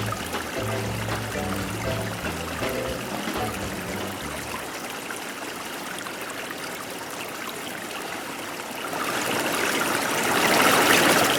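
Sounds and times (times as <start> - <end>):
faint music: 0.0 - 4.8
rushing water: 0.0 - 11.3.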